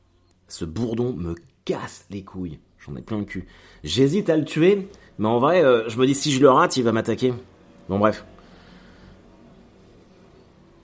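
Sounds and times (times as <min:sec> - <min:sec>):
speech: 0:00.5 - 0:08.3
steady traffic with cars rolling past: 0:04.2 - 0:10.8.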